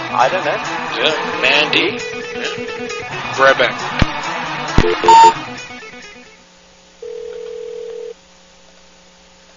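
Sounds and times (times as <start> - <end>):
speech: 0.1 - 4.0, 4.8 - 5.5
short beep: 4.8 - 5.3
steady electronic phone ringback tone: 4.8 - 5.4, 7.0 - 8.1.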